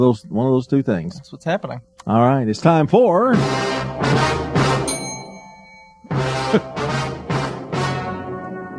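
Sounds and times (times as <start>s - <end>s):
speech: 0.0s - 4.6s, 6.5s - 6.7s
bell struck, ringing with bright sustained overtones: 4.9s - 6.3s
laughter: 6.4s - 6.8s.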